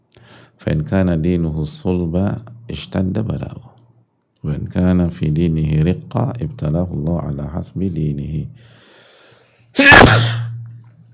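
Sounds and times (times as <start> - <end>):
speech: 0.5 - 3.7, 4.4 - 8.8, 9.8 - 10.4
loud sneeze: 9.8 - 10.6.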